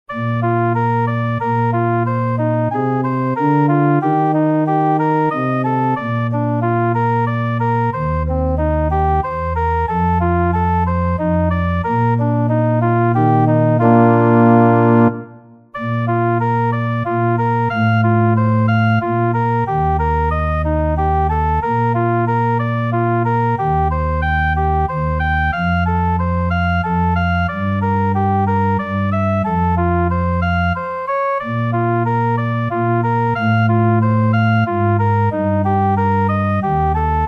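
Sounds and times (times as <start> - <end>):
organ backing track: 0.1 - 37.2
tuba solo: 0.1 - 37.2.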